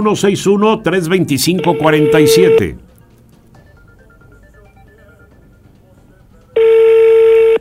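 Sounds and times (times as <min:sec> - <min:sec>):
speech: 0:00.0 - 0:02.8
electronic telephone tone while a call is placed: 0:01.6 - 0:02.8, 0:06.6 - 0:07.6.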